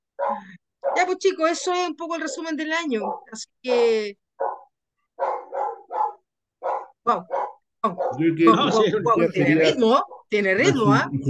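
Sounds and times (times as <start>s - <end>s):
small dog barking in sharp yappy woofs: 0.2s - 1.1s, 2.3s - 3.4s, 4.4s - 8.3s
speech: 1.0s - 4.2s, 7.1s - 11.2s.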